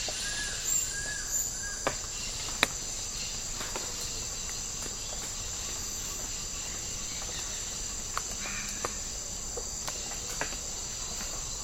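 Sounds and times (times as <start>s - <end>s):
insects droning in tropical rainforest: 0.0s - 11.6s.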